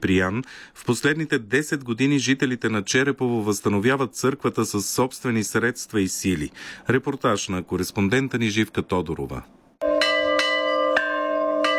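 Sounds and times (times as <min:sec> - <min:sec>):
speech: 0:00.0 - 0:09.6
village church bell ringing festively on a feast day: 0:09.8 - 0:11.7.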